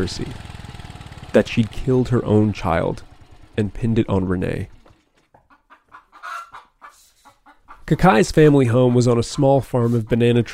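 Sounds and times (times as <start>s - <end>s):
speech: 0.0s - 0.5s, 1.3s - 4.8s, 7.9s - 10.5s
chickens clucking and squawking on a small farm of banana trees and cassava plants: 4.7s - 10.5s.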